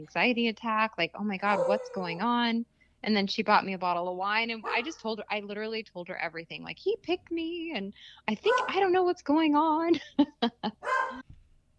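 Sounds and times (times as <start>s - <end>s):
speech: 0.0s - 11.3s
dog barking: 1.5s - 2.2s, 4.6s - 4.9s, 8.5s - 8.8s, 10.8s - 11.2s.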